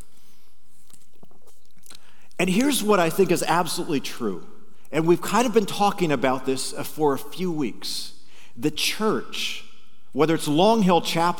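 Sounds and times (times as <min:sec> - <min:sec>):
person sipping water: 0:00.8 - 0:02.4
speech: 0:02.4 - 0:11.3.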